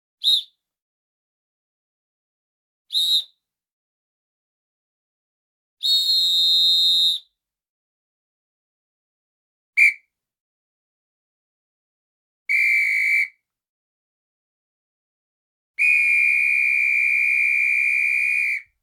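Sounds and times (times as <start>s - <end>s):
short whistle blow: 0.2s - 0.6s, 2.9s - 3.4s, 5.8s - 7.3s, 9.8s - 10.1s, 12.5s - 13.5s, 15.8s - 18.8s.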